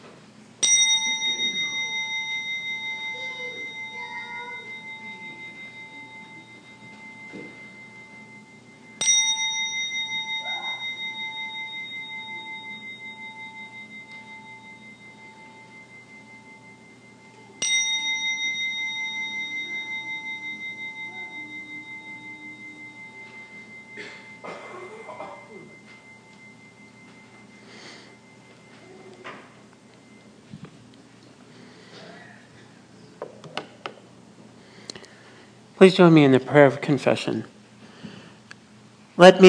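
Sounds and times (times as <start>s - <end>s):
faint room noise: 0.0s - 39.4s
resonant bell ringing: 0.6s - 30.5s
speech: 35.8s - 37.6s, 39.2s - 39.4s.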